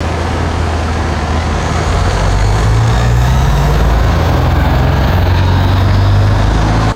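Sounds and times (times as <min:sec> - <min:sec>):
heavy bus accelerating and driving away: 0:00.0 - 0:06.9.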